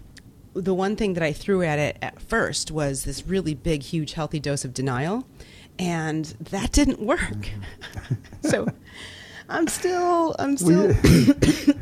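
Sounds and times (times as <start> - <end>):
speech: 0.6 - 11.7
person with bronchitis clearing throat: 10.7 - 11.7
person with bronchitis coughing: 10.7 - 11.7.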